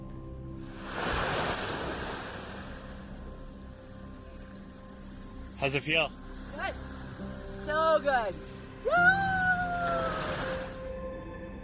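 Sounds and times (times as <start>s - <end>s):
steady broadband hiss: 0.7s - 8.8s
ocean waves lapping onto a sandy beach: 0.7s - 10.9s
speech: 5.6s - 6.8s, 7.7s - 9.3s.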